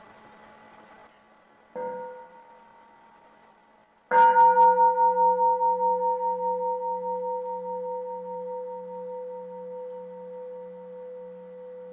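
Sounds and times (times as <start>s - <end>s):
mindfulness meditation bell ringing: 1.8s - 3.0s, 4.1s - 11.9s.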